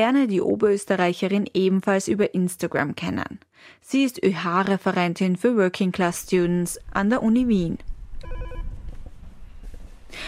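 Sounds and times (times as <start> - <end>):
speech: 0.0 - 8.4
telephone ringing electronically: 8.2 - 8.7.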